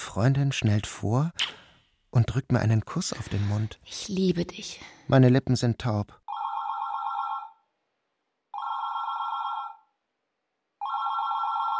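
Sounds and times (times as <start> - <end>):
speech: 0.2 - 6.2
telephone ringing with bright electronic bursts: 6.3 - 7.6, 8.5 - 9.9, 10.8 - 11.7.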